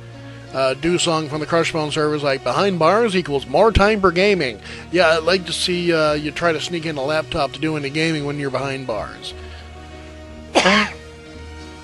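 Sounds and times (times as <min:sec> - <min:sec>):
speech: 0:00.5 - 0:09.4, 0:10.6 - 0:11.0
single short throaty cough at home: 0:10.5 - 0:11.1.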